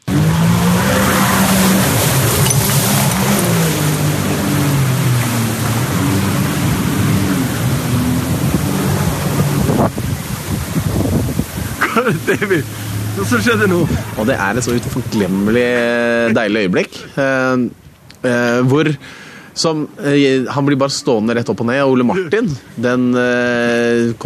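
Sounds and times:
wind noise: 0.0 - 16.4
loud rushing water spray from a boat: 0.0 - 16.6
boat engine roaring as it speeds up and turns sharply: 0.0 - 24.2
person laughing: 11.7 - 12.7, 15.3 - 16.6
speech: 12.1 - 24.2.

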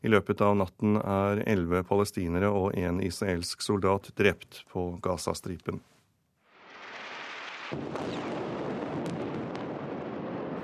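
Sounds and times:
speech: 0.0 - 6.0, 7.7 - 8.4
heavy blast from shelling: 6.7 - 10.6.

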